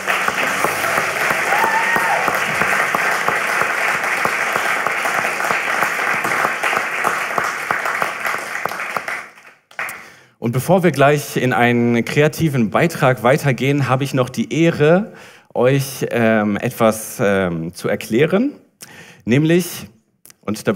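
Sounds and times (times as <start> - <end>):
loud sustained applause from a sizable audience: 0.0 - 10.2
speech: 10.5 - 18.6, 19.2 - 19.9, 20.5 - 20.7.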